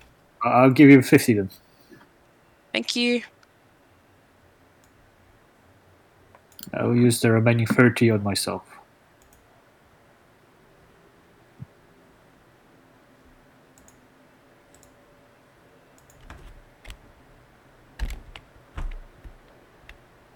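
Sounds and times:
speech: 0.4 - 1.6, 2.8 - 3.3, 6.6 - 8.8
computer mouse clicking in a video game: 9.2 - 9.5, 13.8 - 14.0, 14.7 - 15.0, 16.0 - 17.0, 18.0 - 20.0.

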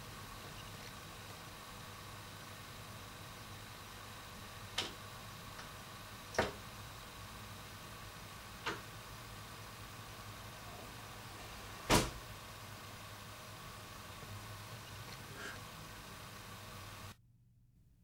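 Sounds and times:
steady low room hum: 0.0 - 18.0
door swinging shut with a sharp thud: 11.8 - 12.2.

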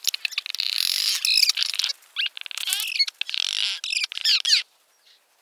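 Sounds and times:
Cliff Swallow squeaky downslurred chirps: 0.0 - 4.6.

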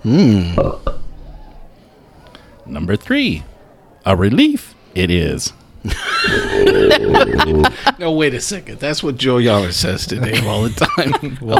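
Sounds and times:
speech: 0.0 - 0.9, 2.7 - 11.5
loud belch: 0.6 - 1.0, 6.2 - 7.8
laughter: 5.8 - 8.2, 10.1 - 11.5
faint gurgling: 6.2 - 7.8.

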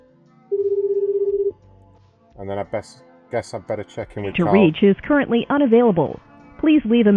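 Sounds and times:
ringback tone on an outgoing call from a dialing machine: 0.5 - 1.5
speech: 2.4 - 7.1.

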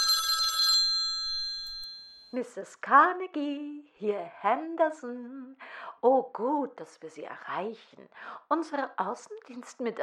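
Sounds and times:
telephone bell ringing: 0.0 - 2.3
speech: 2.3 - 10.0.

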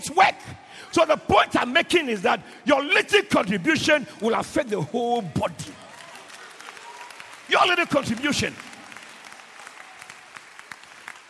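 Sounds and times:
speech: 0.0 - 5.8, 7.5 - 8.6
audience clapping during a church sermon: 3.5 - 11.2.

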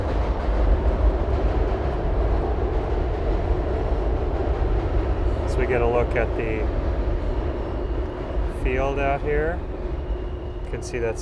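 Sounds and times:
train rumbling past: 0.0 - 11.2
speech: 5.7 - 6.9, 8.6 - 9.7, 10.7 - 11.2.

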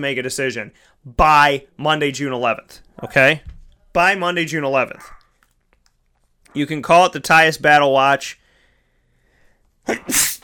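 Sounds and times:
speech: 0.0 - 5.2, 6.5 - 8.4, 9.8 - 10.4
person sneezing during a live radio broadcast: 9.8 - 10.4.

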